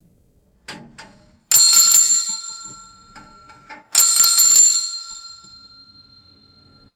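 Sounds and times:
muted metallic gas pump bell ringing: 1.5s - 6.9s.

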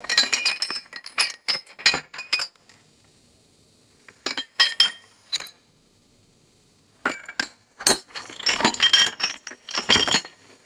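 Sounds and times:
glass bottles clinking and rattling together: 0.1s - 2.5s, 8.2s - 10.4s.

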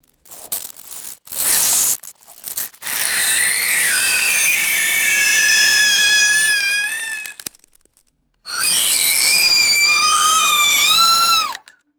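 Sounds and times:
high pitched dry ice screeches on metal: 2.8s - 7.5s, 8.5s - 11.7s.

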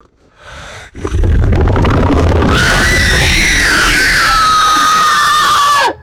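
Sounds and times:
wet gurgling breath: 0.0s - 2.8s
reverberant monster scream: 2.5s - 6.0s.

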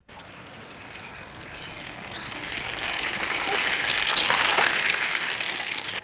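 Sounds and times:
bicycle rolling through a wet puddle: 0.0s - 6.0s.

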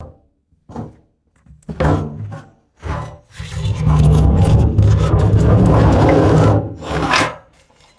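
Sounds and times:
empty metal barrel rolling and scraping: 3.0s - 7.9s.

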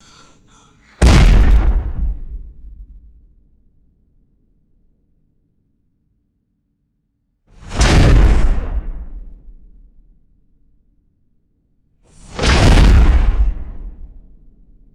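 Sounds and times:
heavy explosive door slam impacts: 1.0s - 2.8s
explosions: 1.0s - 3.4s, 7.6s - 10.1s, 12.2s - 14.8s.

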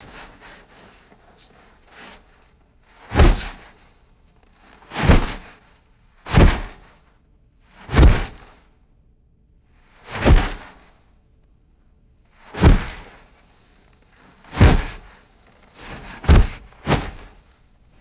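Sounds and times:
heavy plastic tent material pulled and shaken: 3.1s - 3.8s, 4.9s - 5.4s, 6.3s - 6.9s, 7.9s - 8.4s, 10.2s - 10.7s, 12.6s - 13.1s, 14.4s - 17.9s.

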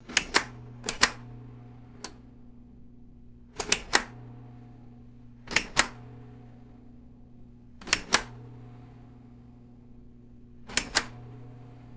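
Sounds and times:
heavy plastic switch toggled on and off: 0.1s - 1.3s, 2.0s - 2.3s, 3.6s - 4.2s, 5.4s - 6.1s, 7.8s - 8.4s, 10.6s - 11.3s.

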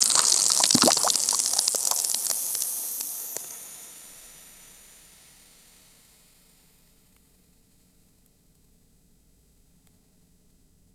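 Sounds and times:
intense carbonated liquid fizzing and bubbling: 0.0s - 3.0s.

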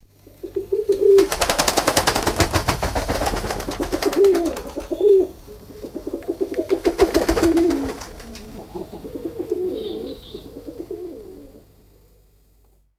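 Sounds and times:
pigeon wings flapping and fluttering: 0.6s - 5.4s, 6.2s - 8.7s.

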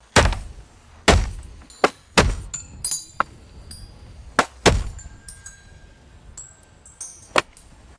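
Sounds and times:
dull low intensity wood chopping impacts: 0.0s - 3.4s, 4.3s - 5.4s, 7.2s - 7.7s.

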